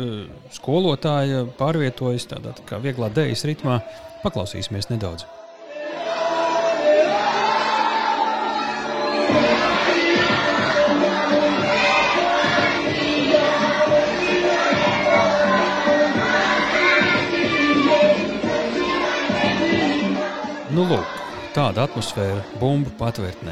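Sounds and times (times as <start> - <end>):
speech: 0.0 - 6.1, 20.8 - 23.5
crowd of children singing and shouting along: 0.0 - 23.5
loud music: 6.0 - 23.5.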